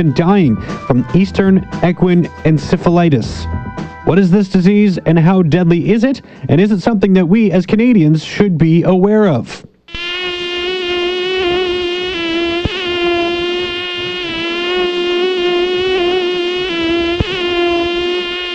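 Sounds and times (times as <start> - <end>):
speech: 0.0 - 9.7
mosquito buzzing: 9.9 - 18.5.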